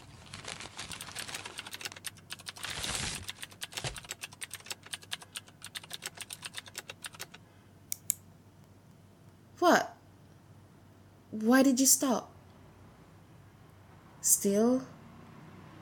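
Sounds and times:
rustling: 0:00.0 - 0:04.1
typing on a computer keyboard: 0:00.9 - 0:07.4
speech: 0:09.6 - 0:10.0, 0:11.4 - 0:12.3, 0:14.4 - 0:15.0.

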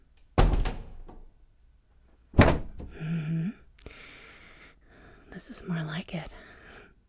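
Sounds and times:
heavy door thudding shut: 0:00.4 - 0:01.3, 0:02.4 - 0:03.1
sharp click of a lock being turned: 0:00.4 - 0:01.3
speech: 0:05.4 - 0:06.4.

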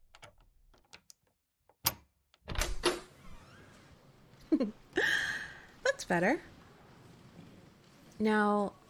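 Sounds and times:
lock turning with small metallic clicks: 0:00.0 - 0:02.9
door off a hallway swinging open with a creak: 0:01.8 - 0:04.1
speech: 0:04.6 - 0:04.8, 0:06.0 - 0:06.5, 0:08.2 - 0:08.8.

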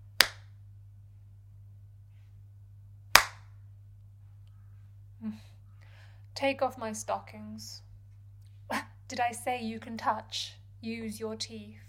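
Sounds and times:
steady low hum: 0:00.0 - 0:11.8
sharp loud slaps of a hand on skin: 0:00.2 - 0:00.5, 0:03.1 - 0:03.5
speech: 0:05.2 - 0:05.6, 0:06.4 - 0:07.9, 0:08.7 - 0:11.8.

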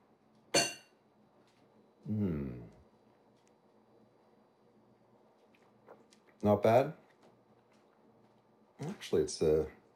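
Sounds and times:
wine glasses clinking in a toast: 0:00.6 - 0:00.9
speech: 0:02.1 - 0:02.4, 0:06.4 - 0:07.0, 0:09.0 - 0:09.8.

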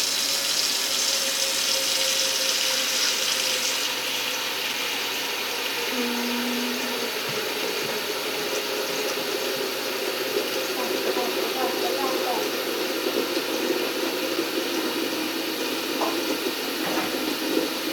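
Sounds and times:
tap water running into a pasta pot: 0:00.0 - 0:17.9
faint hum: 0:05.8 - 0:07.5.

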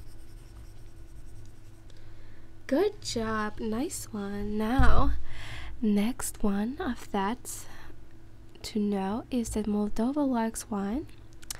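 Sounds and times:
pen scratching on paper as someone writes: 0:00.0 - 0:01.8
low hum: 0:00.0 - 0:11.5
speech: 0:02.7 - 0:07.8, 0:08.6 - 0:11.2.

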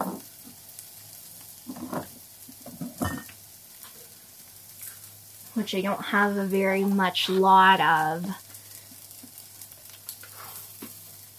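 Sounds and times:
sugar and soy sauce sizzling in a frying pan: 0:00.0 - 0:11.3
speech: 0:05.6 - 0:08.4
light stirring scrapes in a frying pan: 0:10.2 - 0:10.9.

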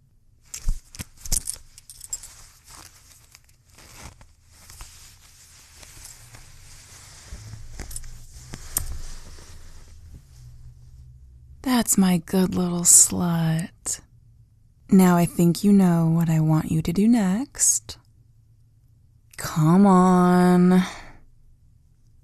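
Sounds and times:
fabric rustling: 0:00.4 - 0:11.0
metallic belt buckle clinking and rattling as a belt is undone: 0:00.5 - 0:03.6, 0:07.7 - 0:08.9
zipper being pulled down: 0:05.7 - 0:09.8
speech: 0:11.9 - 0:14.1, 0:14.9 - 0:18.0, 0:19.4 - 0:21.0.

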